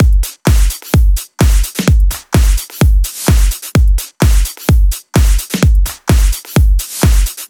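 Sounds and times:
drum loop: 0.0 - 7.4.

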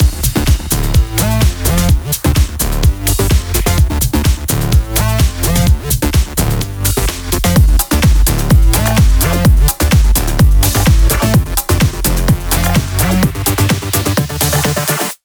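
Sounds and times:
127 BPM electronic dance music mix: 0.0 - 15.2.

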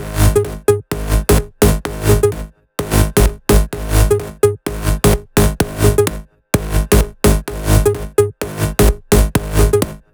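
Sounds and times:
melody loop at 128 BPM in G sharp: 0.2 - 2.4, 3.2 - 6.1, 7.5 - 9.9.

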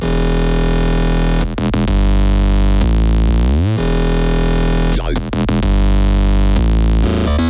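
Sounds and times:
128 BPM bass on root E: 0.0 - 7.4.

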